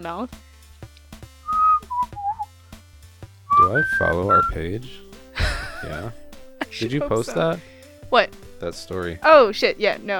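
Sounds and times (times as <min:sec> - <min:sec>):
speech: 0:00.0 - 0:00.5, 0:03.6 - 0:05.1, 0:05.8 - 0:10.1
person whistling short clear notes: 0:01.5 - 0:02.5, 0:03.5 - 0:04.6
laughter: 0:05.4 - 0:07.7.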